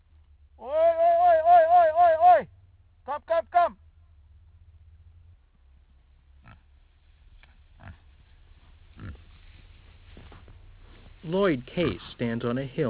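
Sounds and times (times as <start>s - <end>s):
low rumble: 0.0s - 12.8s
wild pigs grunting and oinking on a hill near Waimea on the Big Island of Hawaii: 7.8s - 8.2s, 8.9s - 9.4s, 11.6s - 12.2s
speech: 11.3s - 12.8s.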